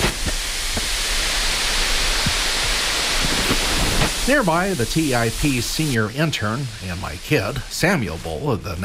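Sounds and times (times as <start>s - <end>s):
faint pops and crackles: 0.0s - 4.7s
steam hissing from water poured on hot rocks of a cooking oven: 0.0s - 8.8s
speech: 4.3s - 8.8s.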